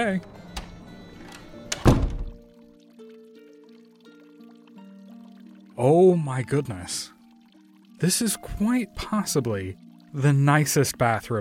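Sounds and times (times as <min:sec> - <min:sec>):
speech: 0:00.0 - 0:00.4, 0:05.8 - 0:07.2, 0:08.0 - 0:11.3
private restroom door closing with a thunk: 0:00.5 - 0:02.4
restroom door latch click: 0:00.5 - 0:02.4.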